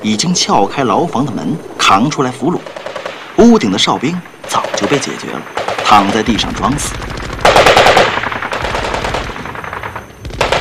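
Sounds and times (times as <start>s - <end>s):
speech: 0.0s - 2.7s, 3.4s - 7.1s
Minimi machine gun strafing fire during a military hostage-rescue exercise: 2.6s - 3.6s, 4.5s - 10.5s.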